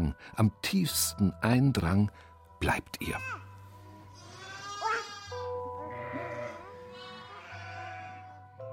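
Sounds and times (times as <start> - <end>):
speech: 0.1 - 3.5
sheep bleating: 4.2 - 8.4.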